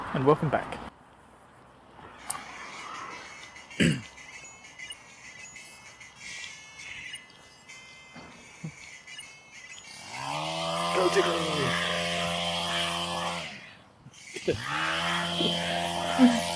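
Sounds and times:
speech: 0:00.1 - 0:00.9
hedge trimmer cutting a hedge: 0:09.7 - 0:13.8, 0:14.4 - 0:16.5.

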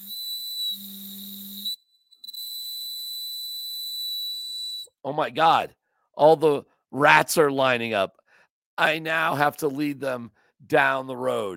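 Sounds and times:
toy bird whistle blowing a high whistle: 0:00.0 - 0:04.9
speech: 0:05.0 - 0:08.2, 0:08.8 - 0:11.5.

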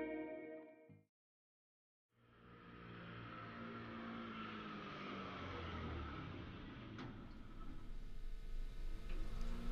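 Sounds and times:
small newspaper delivery motorbike engine passing: 0:02.4 - 0:09.7.

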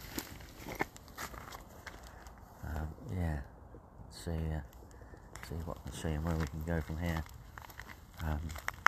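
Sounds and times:
crunching footsteps on a gritty surface: 0:00.0 - 0:02.4, 0:05.4 - 0:08.8
speech: 0:04.2 - 0:04.8, 0:05.5 - 0:07.4, 0:08.2 - 0:08.7.

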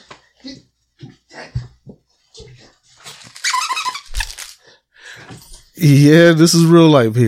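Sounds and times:
squeaky toy squeaking as a dog chews it: 0:03.4 - 0:04.4
speech: 0:05.8 - 0:07.2.

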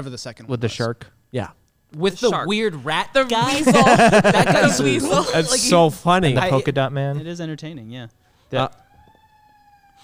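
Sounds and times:
speech: 0:00.0 - 0:08.8
laughter: 0:03.4 - 0:05.8
police car siren passing: 0:08.5 - 0:10.0.

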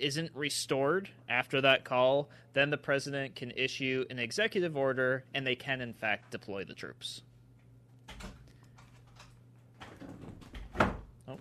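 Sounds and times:
speech: 0:00.0 - 0:07.3
door opening with clicks, rattles and scraping knocks: 0:09.0 - 0:11.4
door thud: 0:09.9 - 0:11.1.

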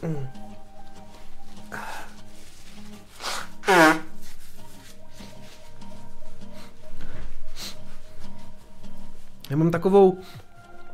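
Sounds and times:
speech: 0:00.0 - 0:00.4, 0:09.5 - 0:10.4
rustling: 0:00.2 - 0:10.9
soft sniffs: 0:01.6 - 0:05.7, 0:06.4 - 0:08.1
loud honking nose blow of a person with a runny nose: 0:01.6 - 0:08.2.

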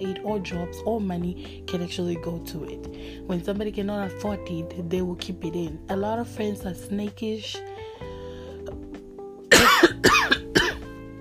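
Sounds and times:
speech: 0:00.0 - 0:07.7
person coughing: 0:09.5 - 0:10.8.

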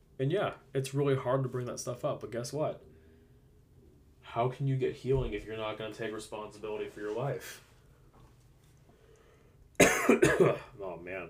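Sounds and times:
speech: 0:00.2 - 0:02.9, 0:04.3 - 0:07.7, 0:10.1 - 0:11.2
person coughing: 0:09.8 - 0:10.8.

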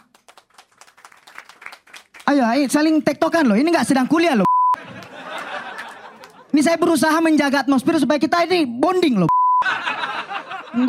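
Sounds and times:
crowd clapping: 0:00.0 - 0:06.6
speech: 0:02.3 - 0:04.5, 0:06.5 - 0:09.3
laughter: 0:04.8 - 0:06.7, 0:09.6 - 0:10.8.

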